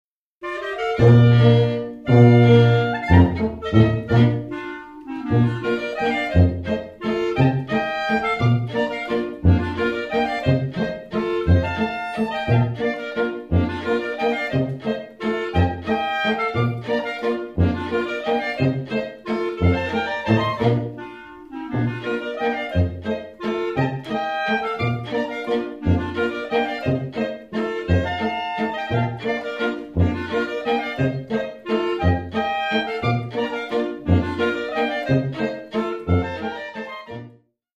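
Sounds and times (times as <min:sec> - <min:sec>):
Volksmusik half-waltz from Chiemgau: 0:00.4 - 0:37.5.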